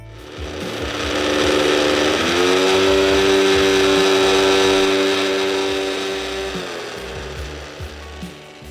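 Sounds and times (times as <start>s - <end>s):
small empty electric multi-chopper motor revving with turbo button: 0.0s - 8.7s.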